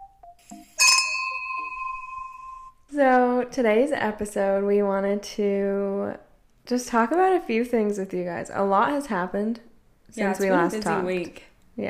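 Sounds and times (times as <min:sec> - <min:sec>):
glasses clinking in a toast: 0:00.8 - 0:02.7
speech: 0:03.0 - 0:11.8.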